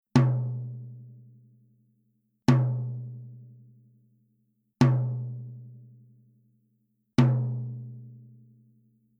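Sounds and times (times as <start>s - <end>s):
clear soft tom drum: 0.1s - 1.4s, 2.5s - 3.8s, 4.8s - 5.8s, 7.2s - 8.3s.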